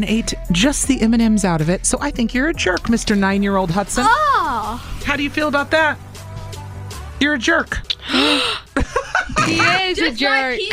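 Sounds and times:
speech: 0.0 - 6.1, 7.2 - 10.7
sharp voiced gasp of mock shock: 8.0 - 8.7
breathy chuckles from more than one person: 8.0 - 10.0.

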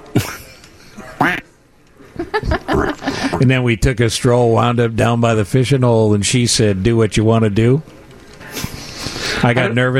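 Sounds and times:
laughter: 0.1 - 1.4, 2.0 - 3.5, 8.5 - 9.9
duck quacking: 1.2 - 1.4
speech: 2.4 - 8.0, 9.4 - 9.9.

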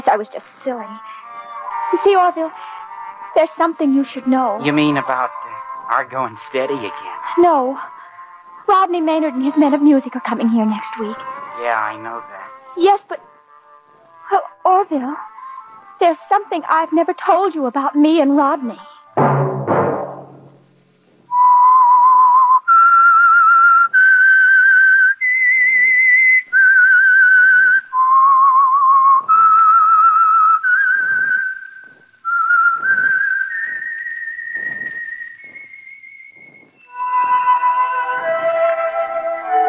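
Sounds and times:
speech: 0.1 - 1.2, 1.9 - 2.7, 3.4 - 7.9, 8.7 - 13.3, 14.3 - 15.3, 16.0 - 19.3
whistled melody: 1.0 - 7.8, 21.3 - 39.6.

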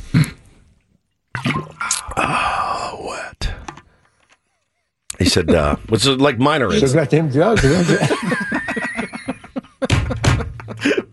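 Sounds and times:
slurping and swallowing: 0.0 - 2.8
person sipping water: 0.0 - 4.8
laughter: 5.1 - 6.0, 6.6 - 11.1
speech: 5.2 - 8.4.

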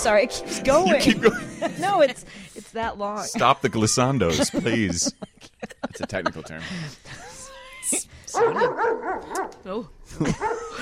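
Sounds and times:
speech: 0.0 - 7.2, 8.4 - 10.8
laughter: 0.7 - 2.3, 3.4 - 7.5, 10.1 - 10.8
dog barking with added reverb: 8.4 - 9.2.

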